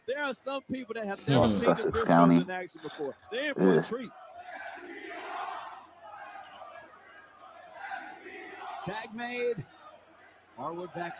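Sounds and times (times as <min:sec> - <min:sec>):
speech: 0:00.1 - 0:04.2, 0:08.8 - 0:09.8, 0:10.6 - 0:11.1
wrestling arena crowd roaring and chanting: 0:03.2 - 0:11.1.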